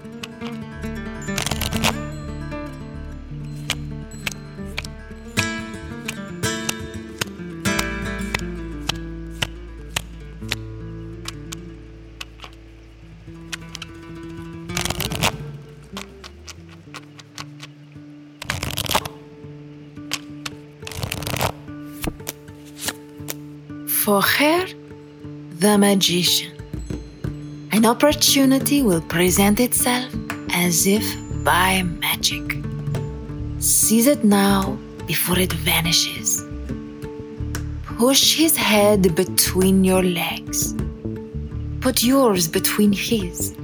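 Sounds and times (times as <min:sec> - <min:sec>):
quiet music: 0:00.0 - 0:43.6
tarot cards shuffled and drawn: 0:20.9 - 0:23.0
speech: 0:24.1 - 0:24.8, 0:25.6 - 0:26.5, 0:27.8 - 0:32.6, 0:33.6 - 0:36.4, 0:38.0 - 0:40.8, 0:41.8 - 0:43.6.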